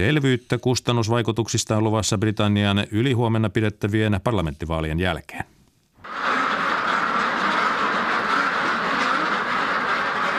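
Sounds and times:
speech: 0.0s - 6.3s
ducks quacking on a duck farm at the Irish border: 6.1s - 10.3s.

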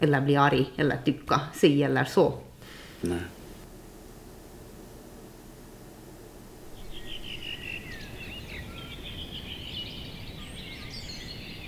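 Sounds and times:
speech: 0.0s - 3.4s
birds singing in a dawn chorus: 6.7s - 11.6s.

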